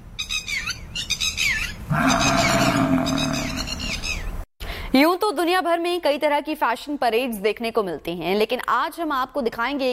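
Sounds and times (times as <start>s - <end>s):
birds chirping and twittering in the Sariska forest: 0.2s - 4.4s
tiger roaring in the Sariska forest: 1.9s - 3.8s
speech: 5.3s - 9.9s.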